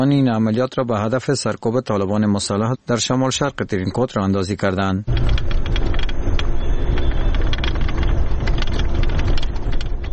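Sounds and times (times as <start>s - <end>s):
speech: 0.0s - 5.7s
Humvee armoured vehicles driving carrying Afghan forces into Tarinkot: 5.1s - 10.1s
dense crackling and rattling noise: 5.1s - 10.1s.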